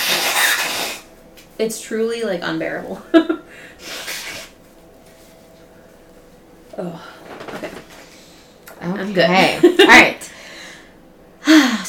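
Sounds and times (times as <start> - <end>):
person blowing nose: 0.0 - 1.1, 3.8 - 4.6
speech: 1.6 - 4.0, 6.8 - 7.1, 8.8 - 10.2.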